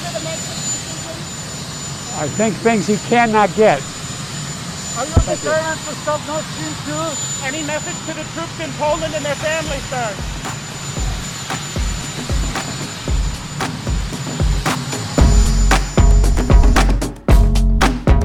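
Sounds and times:
helicopter turbine whine: 0.0 - 17.8
helicopter rotor chopping: 0.0 - 18.1
speech: 2.2 - 3.9, 5.0 - 10.4.

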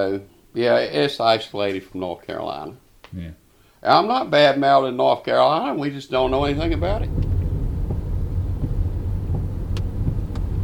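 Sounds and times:
speech: 0.0 - 7.2
car engine and road noise driving on rural roads: 6.2 - 10.6.

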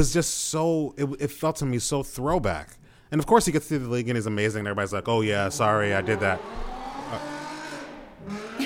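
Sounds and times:
speech: 0.0 - 7.4
racing car engine whining: 5.3 - 8.6
car tire screech: 5.5 - 8.6.

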